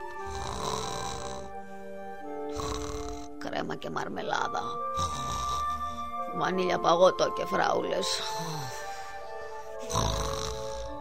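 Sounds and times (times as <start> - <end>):
man snoring loudly while asleep: 0.0 - 3.4, 4.6 - 6.3, 8.2 - 10.9
speech: 3.6 - 5.4, 6.4 - 8.8.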